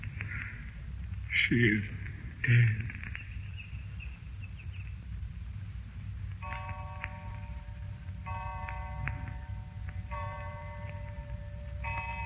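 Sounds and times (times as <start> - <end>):
low rumbling background: 0.0 - 12.2
speech: 1.4 - 3.1
clock chimes striking twelve: 6.4 - 12.2.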